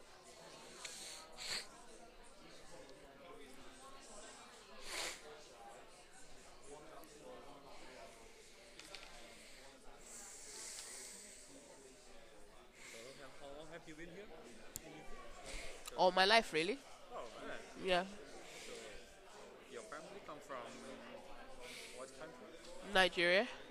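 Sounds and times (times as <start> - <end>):
breathy nasal sniffs from a congested nose: 0.7 - 1.7, 4.8 - 5.2
speech: 16.1 - 16.9, 17.9 - 18.2, 22.9 - 23.6.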